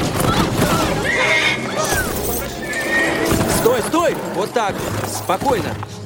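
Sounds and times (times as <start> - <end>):
horse hooves clopping on a town square: 0.5 - 6.0
horse neighing on a town square: 0.8 - 4.0
speech: 4.4 - 6.0.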